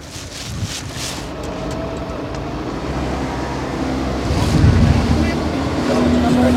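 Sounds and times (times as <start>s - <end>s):
gusts of wind buffeting the microphone: 0.0s - 2.5s, 4.1s - 6.5s
fishing boat engine droning while motoring out of a marina port: 0.9s - 6.5s.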